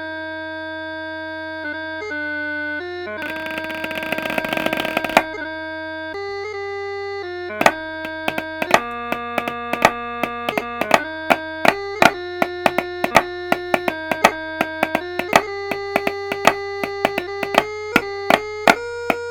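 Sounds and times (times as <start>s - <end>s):
bagpipe chanter: 1.6s - 19.2s
snare drum: 3.2s - 5.3s, 7.6s - 19.2s.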